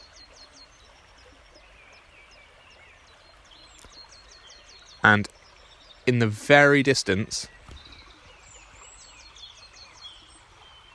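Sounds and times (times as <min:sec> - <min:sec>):
dawn chorus of many small birds chirping and trilling: 0:00.0 - 0:10.9
speech: 0:05.0 - 0:05.4, 0:06.1 - 0:07.6
steady rushing hiss of a stream: 0:06.0 - 0:10.9.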